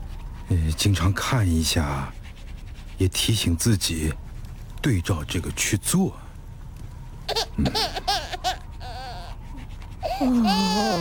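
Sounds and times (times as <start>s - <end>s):
speech: 0.5s - 2.2s, 3.0s - 4.2s, 4.8s - 6.2s, 7.6s - 8.2s, 10.2s - 10.9s
infant crying in quavering wails: 7.3s - 9.4s, 10.0s - 10.9s.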